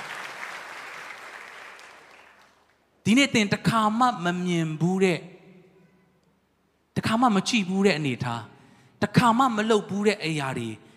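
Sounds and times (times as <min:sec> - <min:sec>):
congregation applauding during a church service: 0:00.0 - 0:02.8
speech: 0:03.1 - 0:05.3, 0:07.1 - 0:10.9.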